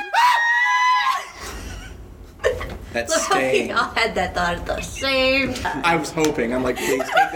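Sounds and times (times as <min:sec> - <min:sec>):
person screaming: 0:00.0 - 0:01.4
speech: 0:02.9 - 0:07.3
laughter: 0:06.5 - 0:07.3.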